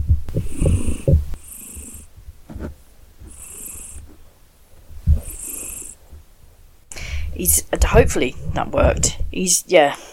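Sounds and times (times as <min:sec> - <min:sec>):
domestic cat purring: 0:00.3 - 0:04.3, 0:05.0 - 0:06.1
speech: 0:07.4 - 0:10.1.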